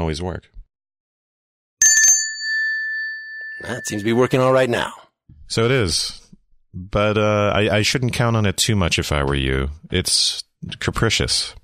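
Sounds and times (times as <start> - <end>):
speech: 0.1 - 0.6, 3.6 - 6.2, 6.8 - 11.6
call bell ringing: 1.8 - 4.9.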